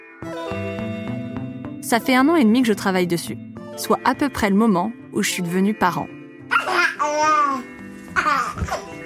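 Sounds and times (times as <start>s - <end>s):
speech: 0.2s - 0.9s, 1.8s - 6.2s
baby laughing and babbling: 6.5s - 9.0s.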